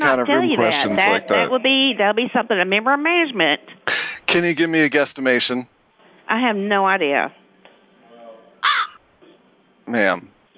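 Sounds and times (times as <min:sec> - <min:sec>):
speech: 0:00.1 - 0:05.7, 0:06.3 - 0:07.4, 0:09.9 - 0:10.3
person imitating a crow caw: 0:08.6 - 0:09.0.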